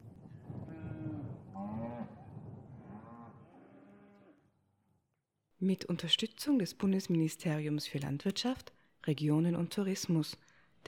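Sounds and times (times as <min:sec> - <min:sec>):
several cows mooing: 0:00.7 - 0:02.2, 0:02.8 - 0:04.4
speech: 0:05.6 - 0:10.8.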